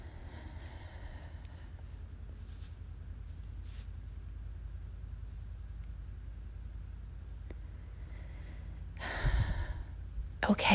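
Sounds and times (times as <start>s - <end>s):
deep breath during a guided breathing exercise: 0.0s - 2.0s, 7.8s - 10.1s
speech: 10.5s - 10.7s.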